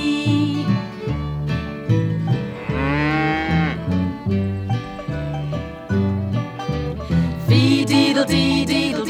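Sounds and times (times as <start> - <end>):
bouncy steady musical accompaniment: 0.0 - 9.0
cow mooing: 2.3 - 5.9.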